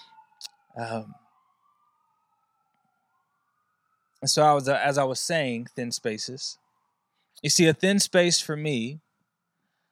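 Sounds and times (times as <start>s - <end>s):
emergency siren wailing: 0.0s - 9.9s
speech: 0.8s - 1.2s, 4.2s - 6.6s, 7.4s - 9.0s.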